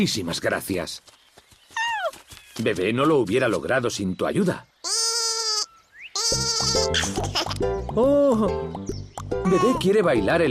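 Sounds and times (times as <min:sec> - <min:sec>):
speech: 0:00.0 - 0:01.2, 0:02.6 - 0:04.7, 0:07.6 - 0:10.4
sheep bleating: 0:04.9 - 0:07.0.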